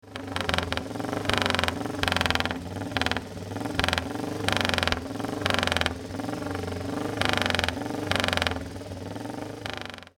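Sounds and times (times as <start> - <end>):
Cooper Norton Mk13 engine: 0.0 - 10.1.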